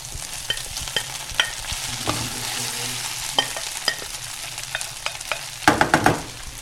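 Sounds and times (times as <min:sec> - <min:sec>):
onions frying in a pan for a mustard onion sauce: 0:00.0 - 0:06.6
scraping and clinking stirring strokes in a pan: 0:00.3 - 0:05.7.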